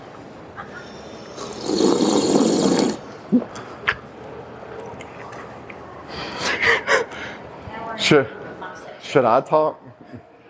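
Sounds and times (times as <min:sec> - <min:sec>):
person slurping water: 0:01.2 - 0:03.1
person gulping water: 0:01.3 - 0:03.6
speech: 0:03.3 - 0:03.6, 0:08.1 - 0:08.4, 0:09.1 - 0:10.0.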